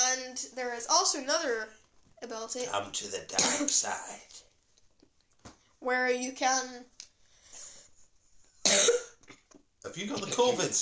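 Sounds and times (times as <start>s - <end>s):
speech: 0.6s - 4.4s, 5.8s - 7.0s, 8.7s - 9.1s, 9.8s - 10.8s
sharp loud cough: 3.4s - 3.8s, 8.6s - 9.2s, 10.1s - 10.7s.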